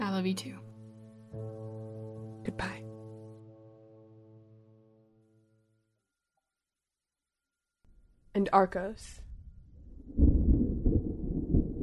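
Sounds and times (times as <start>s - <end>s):
speech: 0.2s - 0.7s, 2.5s - 2.8s, 8.4s - 9.2s
deep rolling thunder rumbling: 8.9s - 11.8s.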